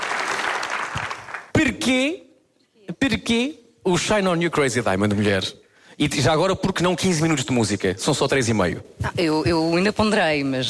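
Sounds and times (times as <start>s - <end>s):
audience applause for a performer at a live evening show: 0.0s - 1.5s
speech: 1.7s - 2.2s, 3.0s - 10.6s.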